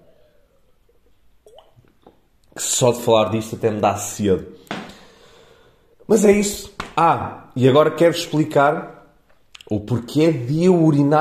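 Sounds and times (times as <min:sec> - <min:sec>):
person drinking water with sips and swallowing gulps: 0:00.2 - 0:02.5
speech: 0:02.6 - 0:04.6, 0:06.1 - 0:09.0, 0:09.7 - 0:11.1.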